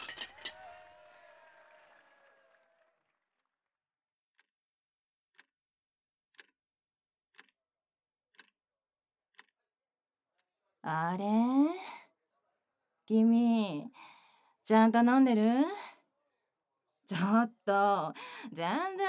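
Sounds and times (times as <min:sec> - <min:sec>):
glasses clinking in a toast at an office drinking party: 0:00.0 - 0:00.7
quiet steady ticking: 0:06.3 - 0:06.5, 0:07.3 - 0:07.5, 0:08.3 - 0:08.6
speech: 0:10.9 - 0:11.8, 0:13.1 - 0:14.1, 0:14.7 - 0:15.9, 0:17.1 - 0:19.0.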